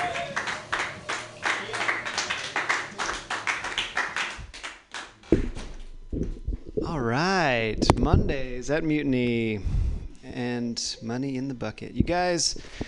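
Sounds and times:
audience applause for a comedian at an open-mic comedy show: 0:00.0 - 0:05.2
speech: 0:06.9 - 0:12.8.

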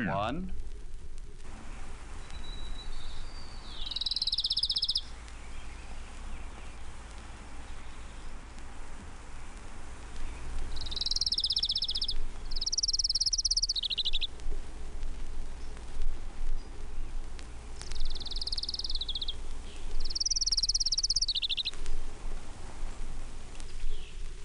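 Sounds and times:
speech: 0:00.0 - 0:00.6
low hiss: 0:00.0 - 0:24.4
Townsend's warbler singing buzzy high-pitched phrases: 0:01.6 - 0:14.3, 0:16.5 - 0:22.1, 0:23.6 - 0:24.3.

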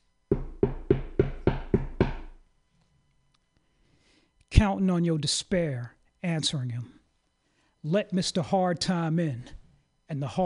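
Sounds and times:
firm knocking on a wooden door: 0:00.3 - 0:02.4
speech: 0:04.6 - 0:07.0, 0:07.8 - 0:10.4.

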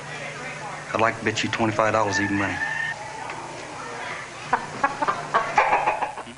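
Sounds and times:
speech: 0:00.9 - 0:02.7
chicken clucking: 0:01.8 - 0:06.3.

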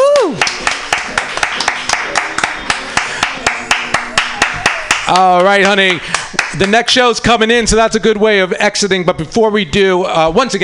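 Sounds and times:
falling vocal whoop: 0:00.0 - 0:00.5
audience clapping: 0:00.0 - 0:06.9
crowd noise: 0:00.0 - 0:08.6
speech: 0:05.1 - 0:10.6.

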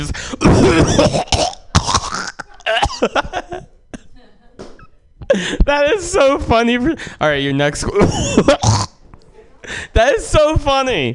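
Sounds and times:
speech: 0:00.0 - 0:01.4, 0:05.3 - 0:08.9, 0:09.7 - 0:11.1
person coughing up phlegm: 0:00.3 - 0:04.1, 0:08.0 - 0:08.9
person clearing throat: 0:00.4 - 0:04.1, 0:08.0 - 0:09.0
laughter: 0:02.2 - 0:05.9.

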